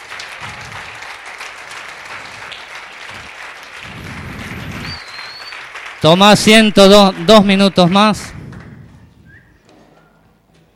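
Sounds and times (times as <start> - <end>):
congregation applauding at a church service: 0.0 - 9.2
speech: 6.0 - 8.4.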